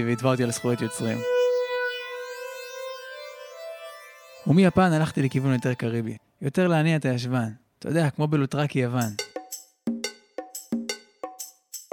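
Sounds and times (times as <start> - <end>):
speech: 0.0 - 1.6, 4.4 - 9.3
bright buzzy synth lead holding a siren-like note: 0.0 - 6.2.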